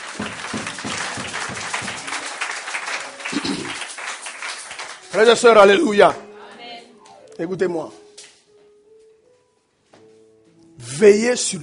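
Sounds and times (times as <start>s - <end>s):
congregation applauding at a church service: 0.0s - 6.0s
speech: 5.2s - 6.2s, 7.4s - 8.0s, 11.0s - 11.6s.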